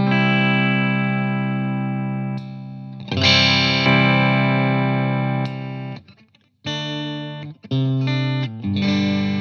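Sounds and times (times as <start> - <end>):
double-cut electric guitar played through an amp: 0.0 - 9.3.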